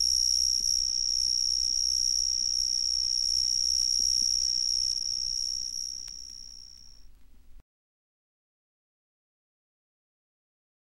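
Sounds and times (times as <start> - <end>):
cicadas shrill continuous drone: 0.0 - 7.1.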